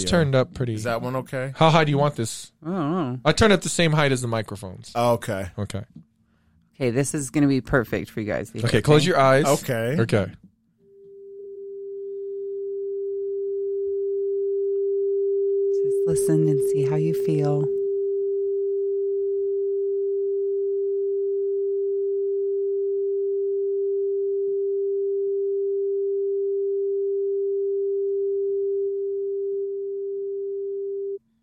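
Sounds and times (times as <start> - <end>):
speech: 0.0 - 6.1, 6.8 - 10.4, 16.0 - 17.8
steady pure 396 hertz sine tone: 10.8 - 31.2.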